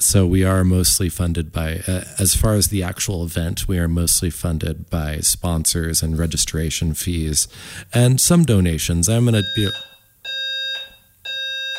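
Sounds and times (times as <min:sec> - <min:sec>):
speech: 0:00.1 - 0:10.0
building fire alarm pulsing shrill electronic tone: 0:09.2 - 0:11.7.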